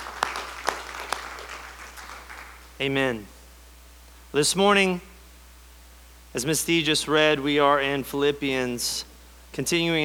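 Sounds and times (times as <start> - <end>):
church congregation applauding during a Sunday service: 0.0 - 2.8
speech: 2.8 - 3.4, 4.3 - 5.1, 6.3 - 10.0.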